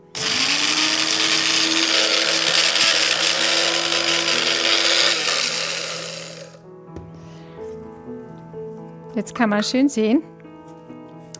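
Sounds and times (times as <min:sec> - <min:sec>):
blender chopping yarrow stems: 0:00.0 - 0:06.6
speech: 0:09.2 - 0:10.4.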